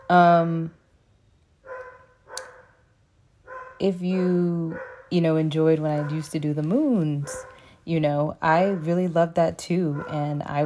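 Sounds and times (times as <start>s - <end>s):
speech: 0.1s - 0.8s, 3.8s - 10.6s
dog barking: 1.6s - 2.8s, 3.5s - 3.8s, 4.7s - 5.2s, 5.9s - 6.4s, 7.2s - 7.7s, 9.9s - 10.6s.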